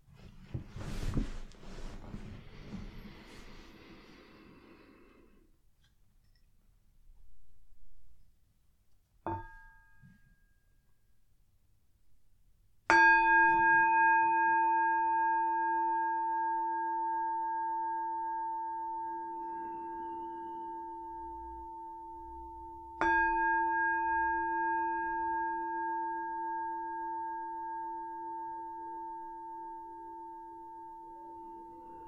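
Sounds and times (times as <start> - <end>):
meditation bell struck and ringing: 12.9 - 32.0.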